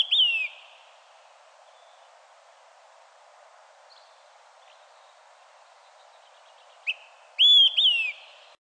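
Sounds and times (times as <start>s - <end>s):
Olive-sided Flycatcher Contopus cooperi three-note whistled song: 0.0s - 0.7s, 6.8s - 8.4s
steady soft hiss: 0.0s - 8.6s.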